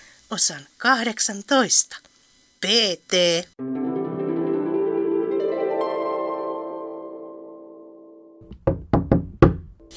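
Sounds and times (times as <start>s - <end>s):
speech: 0.3s - 3.8s
sustained musical chord in a radio play: 3.6s - 8.4s
loud knocks on a door in a radio play: 8.4s - 9.8s.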